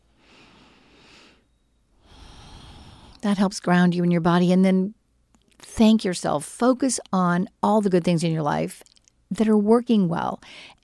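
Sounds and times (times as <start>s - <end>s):
slow deep breath: 0.1s - 3.2s
speech: 3.2s - 5.0s, 5.8s - 10.8s.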